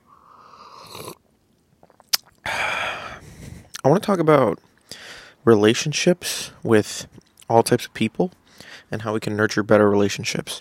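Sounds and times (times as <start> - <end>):
breathy sip or exhale: 0.0 - 0.9, 2.5 - 3.7
person sipping tea while walking around a backyard: 0.2 - 1.2, 1.8 - 3.8
speech: 0.9 - 1.2, 3.8 - 4.7, 5.4 - 10.5.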